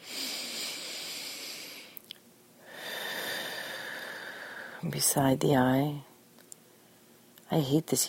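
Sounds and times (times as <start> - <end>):
deep breath during a tapping relaxation exercise: 0.0 - 2.0, 2.6 - 4.8
speech: 4.8 - 6.1, 7.5 - 8.0.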